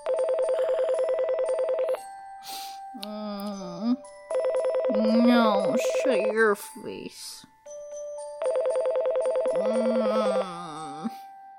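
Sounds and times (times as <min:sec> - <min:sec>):
telephone ringing with an electronic warbling trill: 0:00.0 - 0:02.4, 0:04.2 - 0:06.6, 0:08.4 - 0:11.2
speech: 0:05.0 - 0:07.5, 0:09.6 - 0:11.2.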